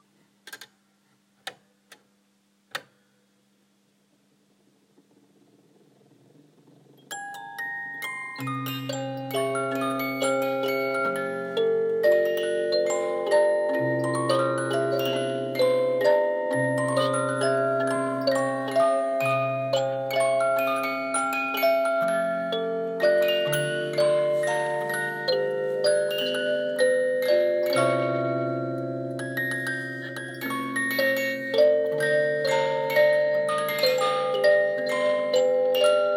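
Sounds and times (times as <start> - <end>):
music box: 7.0 - 36.1.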